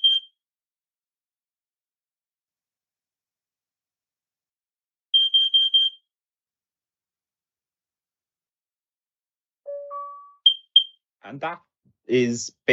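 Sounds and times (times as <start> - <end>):
combined smoke and carbon monoxide detector sound check beeps: 0.0 - 0.3, 9.7 - 11.0
speech: 11.2 - 12.7.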